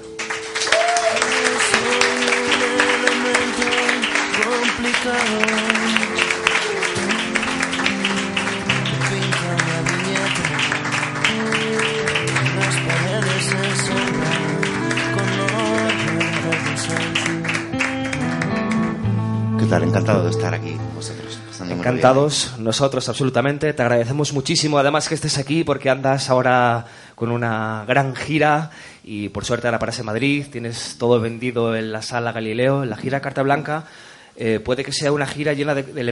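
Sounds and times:
large audience applause: 0.0s - 19.1s
music playing: 0.0s - 22.6s
speech: 19.9s - 20.8s, 21.8s - 36.1s.

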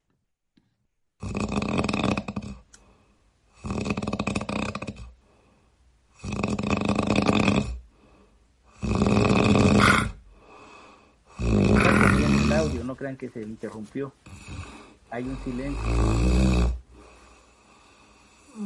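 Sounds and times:
man snoring loudly: 1.2s - 2.7s, 3.5s - 5.2s, 6.2s - 7.8s, 8.7s - 10.2s, 11.3s - 12.9s, 14.3s - 18.6s
speech: 13.0s - 16.8s.

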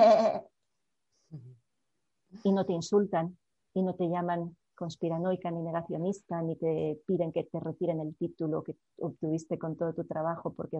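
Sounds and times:
person's voice imitating a goat bleating: 0.0s - 0.5s
speech: 2.4s - 10.7s.

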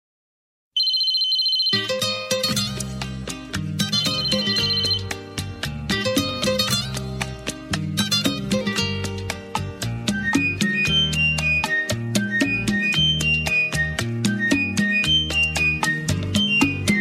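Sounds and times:
shrill electronic telephone ring: 0.8s - 2.4s, 3.8s - 5.2s
cheerful guitar: 1.8s - 17.0s
energetic percussion: 1.8s - 17.0s.

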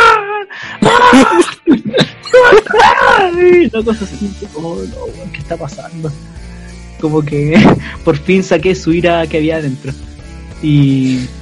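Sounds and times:
person imitating someone screaming with yelps and a strained wavering cry: 0.0s - 1.6s, 2.2s - 3.8s
laughter: 1.1s - 4.5s
speech: 3.7s - 6.4s, 7.0s - 11.4s.

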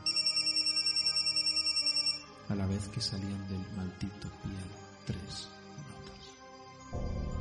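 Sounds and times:
mobile phone ringtone trilling with a bright electronic warble: 0.0s - 2.5s
speech: 2.5s - 5.6s, 6.9s - 7.3s.

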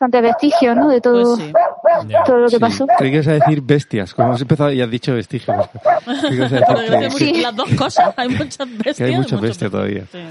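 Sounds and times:
speech: 0.0s - 10.3s
dog barking on a walk: 0.2s - 4.5s, 5.5s - 8.2s
laughter: 0.7s - 10.3s.

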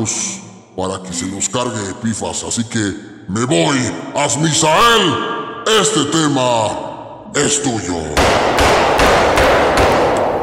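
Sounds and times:
speech: 0.0s - 9.8s
loud sharp ringing hammer strikes: 8.2s - 10.4s.

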